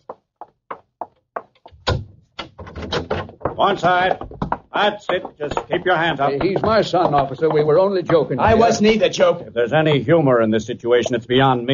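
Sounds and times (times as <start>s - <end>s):
door thunk and scraping as it swings open: 1.6s - 4.6s
speech: 3.6s - 11.7s.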